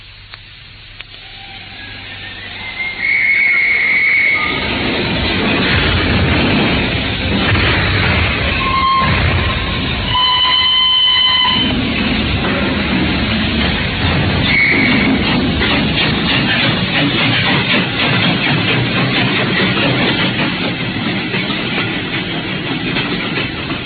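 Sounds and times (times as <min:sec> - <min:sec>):
train rumbling as it pulls away: 0:00.0 - 0:23.8
train whistle blasts: 0:01.2 - 0:04.7, 0:08.6 - 0:11.7, 0:14.5 - 0:15.1.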